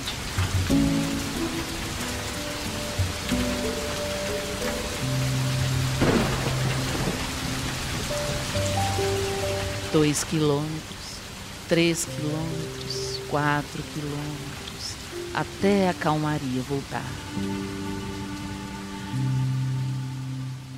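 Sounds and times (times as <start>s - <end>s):
low rumble of thunder: 0.0s - 10.1s
soft sustained musical tones: 0.0s - 20.7s
steady rain in a thunderstorm: 0.0s - 20.7s
speech: 10.0s - 10.9s, 11.7s - 14.5s, 15.4s - 17.8s.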